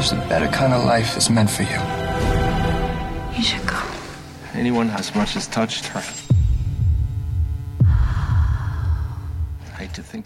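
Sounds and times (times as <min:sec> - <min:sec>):
speech: 0:00.0 - 0:02.4, 0:03.4 - 0:03.8, 0:04.6 - 0:06.3, 0:10.0 - 0:10.2
low throbbing heartbeat sound effect: 0:06.3 - 0:10.2.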